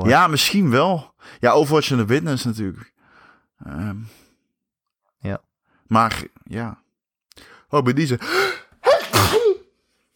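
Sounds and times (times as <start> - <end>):
speech: 0.0 - 3.0, 3.6 - 4.2, 5.2 - 6.8, 7.4 - 8.6
person sneezing: 8.8 - 9.8.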